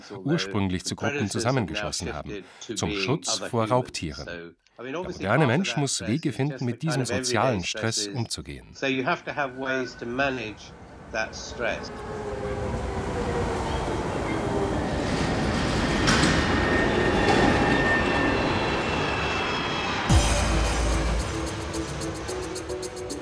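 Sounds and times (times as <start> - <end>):
speech: 0.0 - 13.3
subway train rumbling: 9.4 - 23.2.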